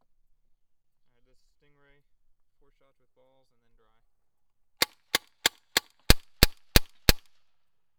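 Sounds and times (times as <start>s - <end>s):
slightly clipped gunshots: 4.8s - 7.3s.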